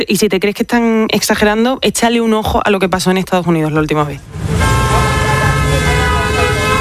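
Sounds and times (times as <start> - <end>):
speech: 0.0 - 4.7
dense rumble of street noise: 4.1 - 6.7
many car horns blaring in a traffic jam: 4.3 - 6.7.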